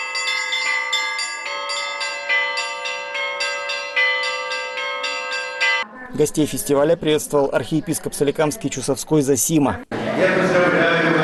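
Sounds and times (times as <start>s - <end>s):
Easter church bells pealing: 0.0s - 7.0s
speech: 6.2s - 10.9s.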